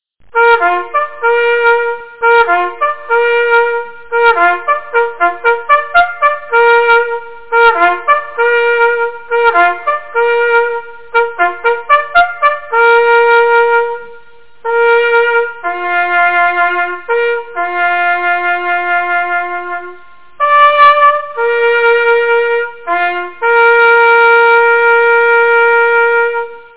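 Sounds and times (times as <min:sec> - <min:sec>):
hunting horn: 0:00.3 - 0:26.7.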